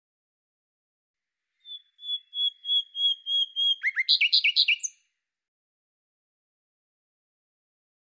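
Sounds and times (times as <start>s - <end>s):
bird calling with clear level whistled notes and quick chirps: 1.6s - 5.0s.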